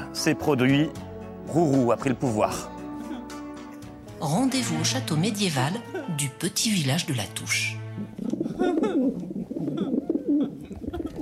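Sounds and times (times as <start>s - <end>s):
speech: 0.2s - 2.8s, 4.2s - 9.4s
pigeon cooing: 8.1s - 11.2s.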